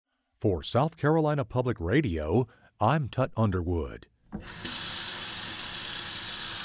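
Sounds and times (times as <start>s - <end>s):
speech: 0.4s - 4.7s
water running from a tap: 4.4s - 6.6s.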